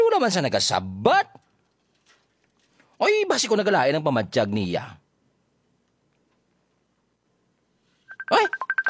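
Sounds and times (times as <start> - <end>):
speech: 0.2 - 1.4, 3.0 - 5.0, 8.3 - 8.7
messenger app call ringtone of short electronic beeps: 8.1 - 8.8.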